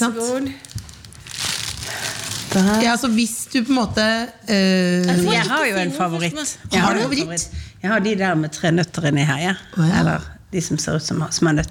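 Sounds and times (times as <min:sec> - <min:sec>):
speech: 0:00.0 - 0:00.8, 0:02.5 - 0:11.6
candy wrapper crinkling while being unwrapped: 0:00.4 - 0:03.3.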